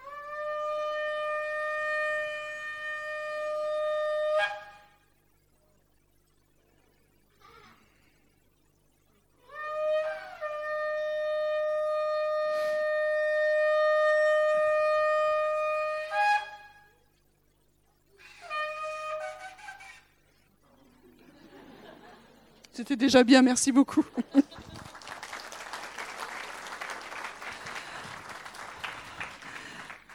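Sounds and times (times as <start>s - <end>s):
shofar ram's horn blasts: 0.0s - 5.0s, 9.5s - 17.0s, 18.2s - 20.0s
laughter: 20.7s - 22.7s, 23.8s - 30.1s
speech: 22.8s - 24.4s.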